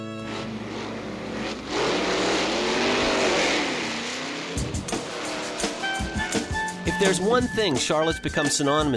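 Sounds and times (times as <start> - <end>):
stock car race cars roaring past at high speed: 0.2 - 7.0
speech: 7.0 - 8.9.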